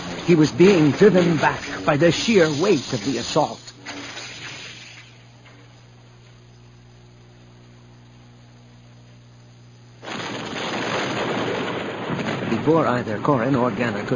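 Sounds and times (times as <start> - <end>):
low steady mechanical hum: 0.0 - 14.1
speech: 0.3 - 3.6, 12.7 - 14.1
explosion shaking a building: 10.0 - 14.1.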